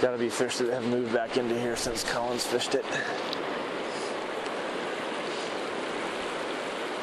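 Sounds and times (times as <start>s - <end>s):
speech: 0.0s - 3.5s
flowing river water rushing: 0.0s - 7.0s.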